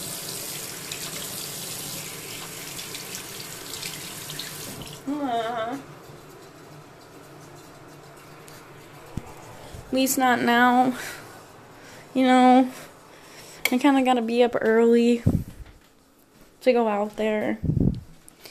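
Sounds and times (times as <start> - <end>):
water running from a tap while washing hands at a sink: 0.0 - 5.1
speech: 5.1 - 6.0, 9.9 - 11.2, 12.2 - 12.8, 13.7 - 15.4, 16.6 - 17.8.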